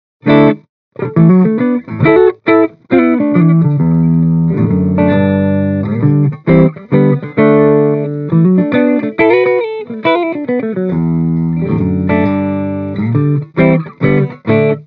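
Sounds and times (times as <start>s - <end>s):
clean electric guitar recorded through an inside microphone: 0.2s - 14.8s.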